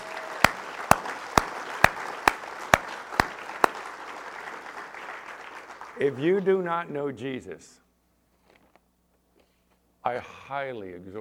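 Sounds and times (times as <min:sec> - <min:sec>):
audience clapping: 0:00.0 - 0:06.6
speech: 0:06.0 - 0:07.8, 0:10.1 - 0:11.1.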